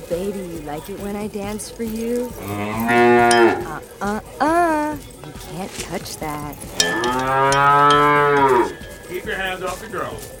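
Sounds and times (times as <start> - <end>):
speech: 0.1 - 10.3
cow mooing loudly: 2.3 - 3.9, 6.7 - 8.9.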